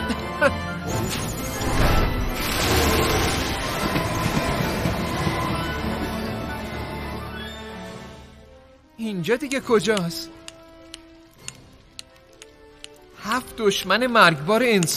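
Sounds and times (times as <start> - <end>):
speech: 0.1 - 1.4, 9.0 - 10.4, 13.3 - 14.9
train rumbling along: 1.6 - 7.2.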